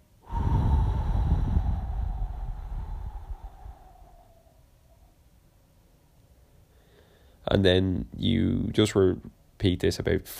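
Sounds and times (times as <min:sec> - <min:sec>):
slow breath pushed out through pursed lips in a breathing exercise: 0:00.2 - 0:04.6
speech: 0:07.5 - 0:10.3.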